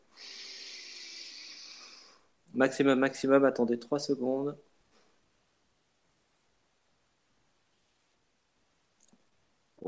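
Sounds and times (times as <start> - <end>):
group taking a deep inhale: 0.1 - 2.3
speech: 2.6 - 4.7.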